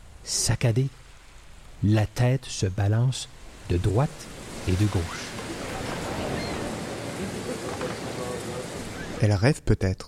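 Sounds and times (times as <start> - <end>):
speech: 0.3 - 1.1, 1.8 - 5.4, 9.2 - 10.0
waves crashing and washing over sand: 3.1 - 9.3.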